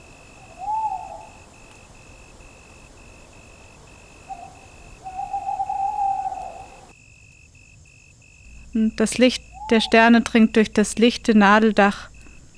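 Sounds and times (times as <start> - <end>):
small owl hooting at night in a small pine forest in a heath: 0.0 - 6.9, 8.6 - 10.9
faint steady hiss: 0.0 - 12.5
speech: 8.8 - 12.1.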